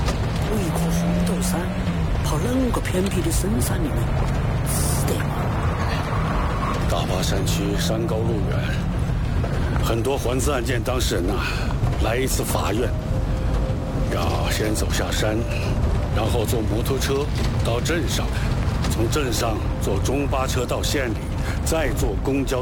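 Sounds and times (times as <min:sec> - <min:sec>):
vehicle engine running with rough low rumble: 0:00.0 - 0:22.6.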